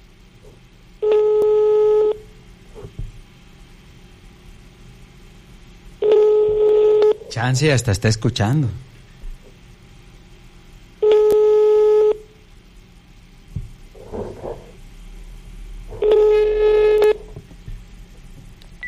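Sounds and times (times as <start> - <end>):
ringback tone of an unanswered telephone call: 1.0 - 2.2, 6.0 - 7.2, 11.0 - 12.2, 16.0 - 17.1
speech: 7.4 - 8.9.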